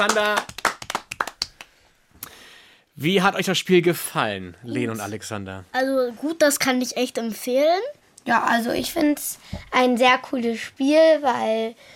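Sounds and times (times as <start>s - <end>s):
speech: 0.0s - 0.6s, 3.0s - 11.9s
small group of people clapping: 0.0s - 1.9s.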